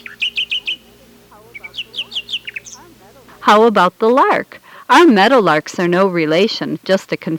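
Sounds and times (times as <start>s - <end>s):
nightingale singing: 0.0s - 3.0s
speech: 3.4s - 7.3s.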